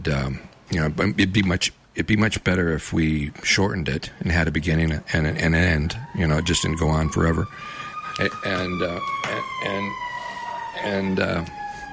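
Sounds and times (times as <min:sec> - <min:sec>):
speech: 0:00.0 - 0:10.1, 0:10.8 - 0:11.6
emergency vehicle sirens wailing outside: 0:04.6 - 0:11.9.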